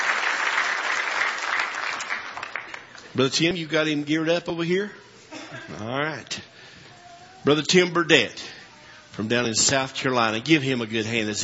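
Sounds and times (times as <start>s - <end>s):
congregation clapping hands in praise at a worship service: 0.0s - 3.2s
speech: 3.2s - 6.4s, 7.4s - 8.6s, 9.2s - 11.4s.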